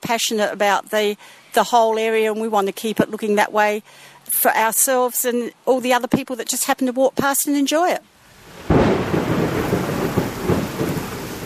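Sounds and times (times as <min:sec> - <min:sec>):
speech: 0:00.1 - 0:09.0
steady rain hissing: 0:08.1 - 0:11.4
deep rolling rumbles of thunder: 0:08.4 - 0:11.4.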